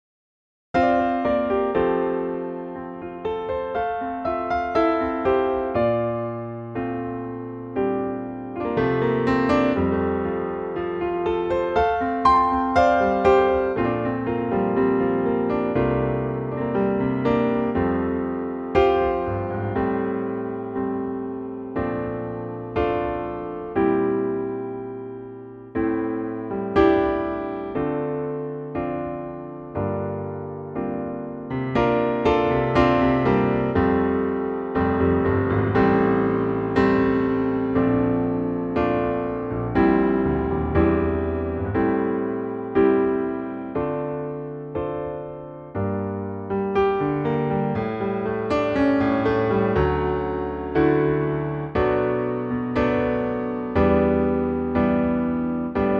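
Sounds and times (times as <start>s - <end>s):
piano note F: 0.8s - 55.9s.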